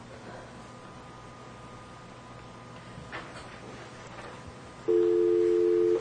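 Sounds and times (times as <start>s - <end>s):
telephone keypad dialing tones: 4.9s - 5.9s.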